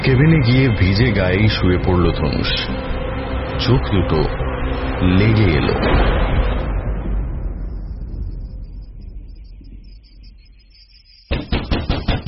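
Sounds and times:
low rumble: 0.0s - 11.0s
speech: 0.1s - 2.9s, 3.6s - 4.4s, 5.0s - 6.4s
heavy banging on a door: 11.3s - 12.2s.

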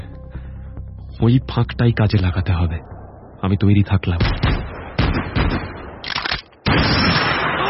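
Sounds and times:
speech: 1.2s - 4.5s
gunfire bursts from one shooter: 4.2s - 7.6s.

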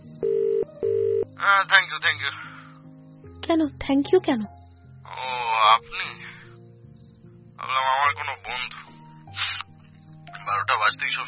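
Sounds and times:
telephone ringback tone after a call is dialled: 0.2s - 1.3s
speech: 1.4s - 2.5s, 3.5s - 4.6s, 5.6s - 6.2s, 7.6s - 8.8s, 10.5s - 11.2s.

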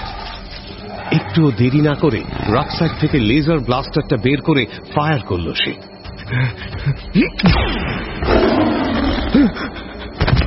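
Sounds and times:
huge black tiger roaring and growling: 0.0s - 3.6s, 8.2s - 9.6s
speech: 1.1s - 8.8s, 9.4s - 9.9s.

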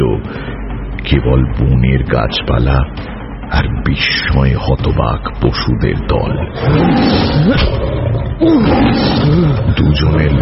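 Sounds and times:
speech: 0.0s - 10.4s
lion roaring and growling during a fight: 6.5s - 10.4s.

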